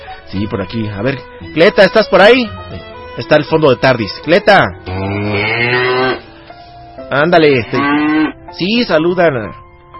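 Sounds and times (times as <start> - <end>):
speech: 0.3 - 2.6, 3.2 - 5.5, 7.1 - 9.6
cow mooing with a deep harmonic bellow: 4.8 - 6.3, 7.5 - 8.4.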